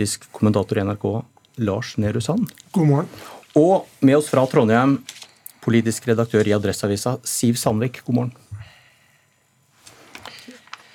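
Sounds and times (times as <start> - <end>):
speech: 0.0 - 8.5
low hiss: 0.0 - 10.9
faint breath of a remote guest over a thin phone line: 8.5 - 10.9.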